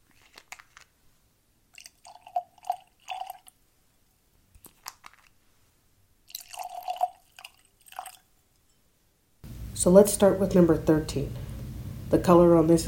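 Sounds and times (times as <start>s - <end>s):
beer poured into tasting glasses with gurgling glug and fizz: 1.8s - 3.5s, 6.3s - 8.2s
speech: 9.8s - 11.4s, 12.2s - 12.8s.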